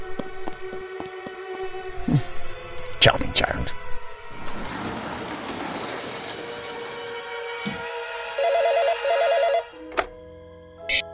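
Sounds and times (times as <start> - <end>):
speech: 3.0 - 3.9
dense noisy clatter: 4.4 - 7.8
telephone ringing with electronic trilling: 8.4 - 9.8.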